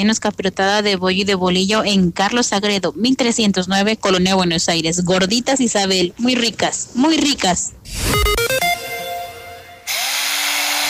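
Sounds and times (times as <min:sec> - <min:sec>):
speech: 0:00.0 - 0:08.7
power drill revving and spinning: 0:09.9 - 0:10.8.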